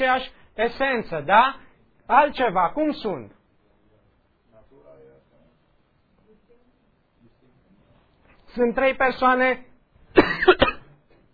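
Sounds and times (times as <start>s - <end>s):
speech: 0.0s - 3.4s, 8.5s - 10.5s
harsh coughing and throat clearing: 10.1s - 11.2s.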